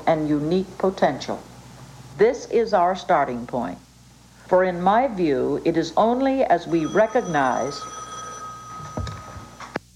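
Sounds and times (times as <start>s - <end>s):
speech: 0.0s - 1.5s, 2.2s - 3.9s, 4.5s - 8.0s
telephone ringing with a high electronic tone: 6.6s - 9.8s.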